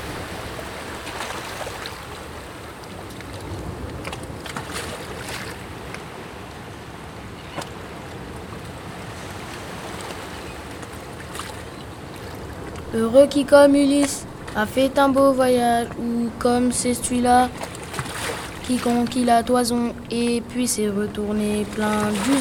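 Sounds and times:
water splashes: 0.0s - 5.6s, 9.2s - 22.3s
ocean waves washing: 0.0s - 5.8s, 9.0s - 22.3s
speech: 13.0s - 17.7s, 18.7s - 22.3s.

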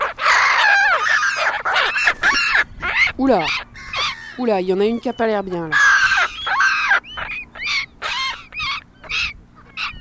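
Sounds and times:
black-headed gulls giving harsh squealing alternate calls: 0.0s - 9.9s
speech: 3.2s - 3.7s, 4.4s - 5.8s.

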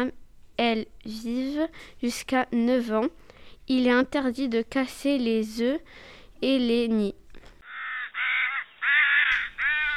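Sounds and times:
speech: 0.0s - 7.2s
crow cawing: 7.6s - 9.9s.

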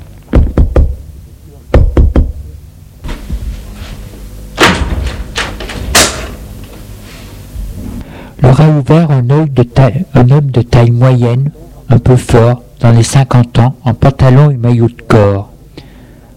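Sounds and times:
knocking on an apartment door in a three-storey building: 0.3s - 1.0s, 1.7s - 2.4s
speech: 8.6s - 15.5s.

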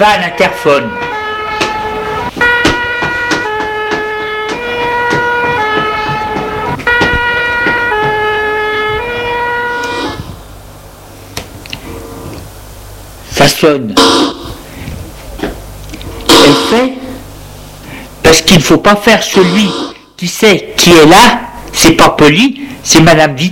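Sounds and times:
speech: 0.0s - 1.1s, 13.4s - 14.3s, 16.7s - 17.0s, 18.3s - 23.4s
fire engine two-tone siren: 0.4s - 10.4s, 14.0s - 14.6s, 16.3s - 17.0s, 19.3s - 20.2s.

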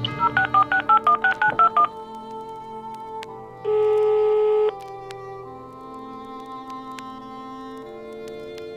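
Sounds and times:
steady telephone tone: 0.1s - 1.9s, 3.7s - 4.7s
telephone keypad DTMF dialing beeps: 0.2s - 1.9s.

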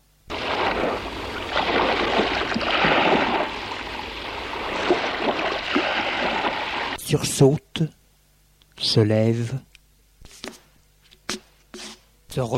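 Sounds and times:
sea waves washing: 0.3s - 7.0s
wind rushing over sea waves: 0.3s - 7.0s
speech: 7.1s - 8.0s, 8.8s - 9.7s, 12.4s - 12.5s.

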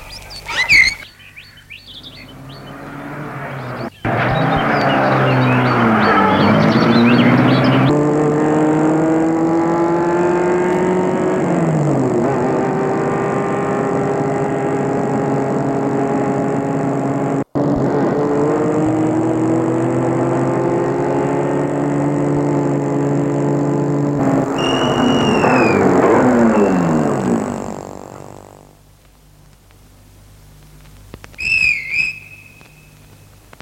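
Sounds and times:
birds chirping: 0.0s - 8.0s, 24.2s - 28.6s, 31.3s - 33.4s
car engine starting and revving as the car pulls away: 1.8s - 28.9s.

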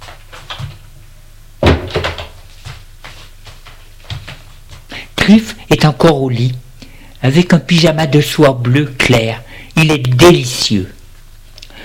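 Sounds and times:
bedroom door opening as someone enters: 1.6s - 2.4s
soft bumps and taps: 1.6s - 4.9s
speech: 5.3s - 6.6s, 7.2s - 11.0s.

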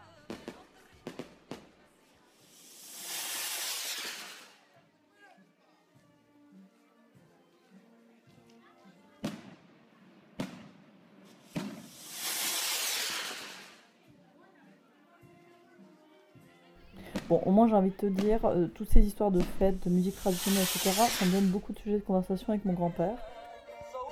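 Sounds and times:
faint murmur of voices: 0.0s - 3.1s, 4.2s - 11.7s, 13.6s - 18.4s
firecrackers banging and echoing through a valley to announce a summer festival: 2.5s - 4.6s, 10.3s - 13.8s, 17.0s - 17.5s, 19.4s - 21.6s
speech: 17.3s - 23.3s.

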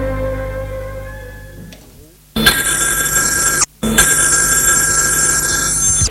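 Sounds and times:
soft tonal passage: 0.0s - 2.2s
telephone bell ringing in a police commissioner's office: 2.5s - 6.1s.

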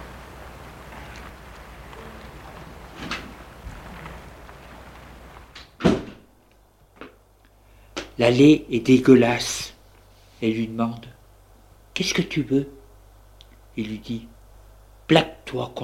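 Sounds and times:
steady low rumble: 0.0s - 15.8s
heavy door of an old run-down apartment building passageway creaking open: 0.9s - 6.3s
speech: 8.2s - 9.7s, 10.4s - 11.2s, 12.0s - 12.8s, 13.8s - 14.3s, 15.1s - 15.8s.

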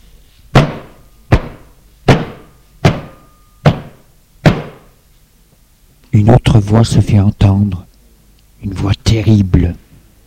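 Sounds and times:
heavy pounding knocks on a door: 0.6s - 4.9s
speech: 6.1s - 7.9s, 8.6s - 9.8s.

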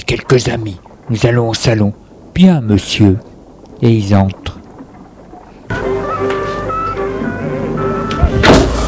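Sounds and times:
speech: 0.1s - 4.6s
steady tonal music-like sound: 5.7s - 8.8s
door shut by a servant with a soft thud: 8.1s - 8.8s.

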